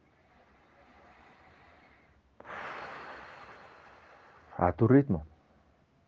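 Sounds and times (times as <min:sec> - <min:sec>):
deep breath drawn in during guided meditation: 0:00.1 - 0:04.6
speech: 0:04.6 - 0:05.3.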